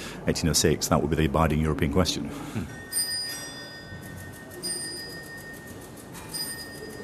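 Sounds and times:
speech: 0.2s - 2.8s
Strasbourg astronomical clock bell striking: 2.8s - 7.0s.

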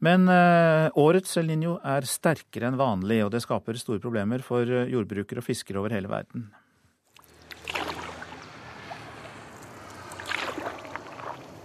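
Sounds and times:
speech: 0.0s - 6.6s
light outdoor ambience on the Magdalena River in Colombia: 6.5s - 11.6s
fisherman's paddle strokes splashing water on the Magdalena River in Colombia: 7.2s - 11.6s
steady low engine-like hum: 7.2s - 11.6s.

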